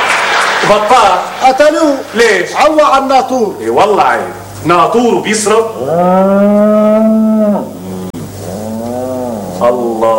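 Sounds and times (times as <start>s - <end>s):
speech: 0.7s - 7.8s, 9.6s - 10.1s
cow mooing: 5.8s - 10.1s.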